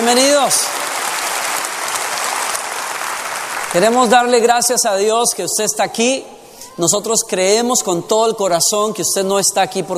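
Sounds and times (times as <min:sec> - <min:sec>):
church congregation applauding to welcome visitors: 0:00.0 - 0:05.4
speech: 0:00.1 - 0:00.9, 0:03.7 - 0:09.9.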